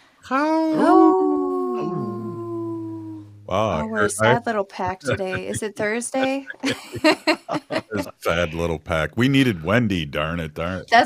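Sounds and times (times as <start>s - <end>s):
speech: 0.3s - 1.0s, 3.5s - 11.0s
second wolf howling: 0.8s - 3.3s
wolf howling: 0.8s - 4.4s
laughter: 3.5s - 11.0s.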